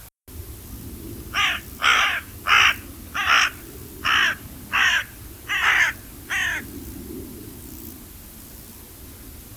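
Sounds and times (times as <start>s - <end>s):
carrion crow Corvus corone cawing: 1.3s - 6.8s.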